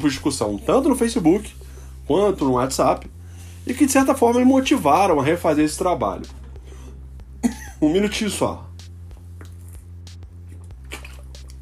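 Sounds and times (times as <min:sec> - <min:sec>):
speech: 0:00.0 - 0:06.4, 0:07.8 - 0:08.7
low steady hum: 0:00.0 - 0:11.6
person sipping and swallowing water: 0:09.2 - 0:11.6.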